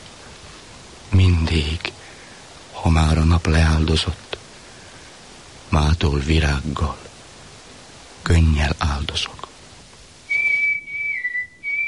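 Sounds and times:
speech: 1.2s - 1.9s, 2.8s - 4.3s, 5.7s - 7.1s, 8.2s - 9.4s
person whistling clear high notes: 10.3s - 11.8s.

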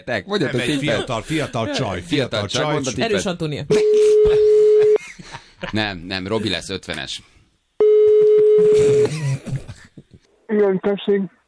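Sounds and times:
speech: 0.0s - 4.7s, 5.6s - 7.4s, 8.6s - 9.2s, 10.6s - 11.4s
telephone dialing tone: 7.8s - 9.1s.

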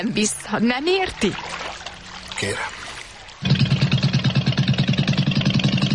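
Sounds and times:
speech: 0.0s - 1.6s, 2.4s - 2.8s
motorboat engine starting and chugging at idle: 3.4s - 5.9s.

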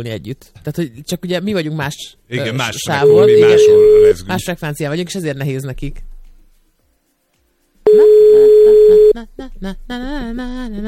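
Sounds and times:
speech: 0.0s - 6.1s, 9.2s - 10.8s
telephone dial tone of an outgoing call: 3.1s - 4.1s, 7.9s - 9.2s.

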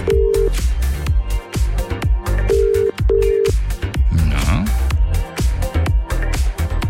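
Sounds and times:
beeping ringback tones of an outgoing phone call: 0.0s - 0.6s, 2.4s - 3.6s
loud driving music bed with a punchy beat: 0.0s - 6.8s.

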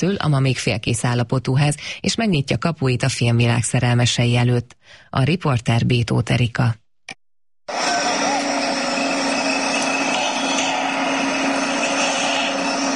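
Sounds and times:
speech: 0.0s - 6.8s
construction site machine droning hum: 7.7s - 12.9s.

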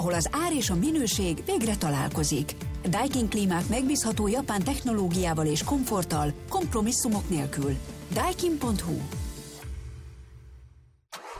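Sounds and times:
speech: 0.0s - 9.2s
new car engine starting: 9.3s - 11.3s.

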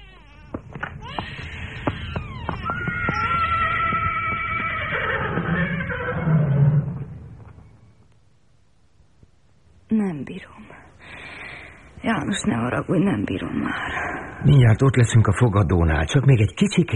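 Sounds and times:
horse neighing: 1.0s - 7.2s
speech: 12.1s - 16.9s.

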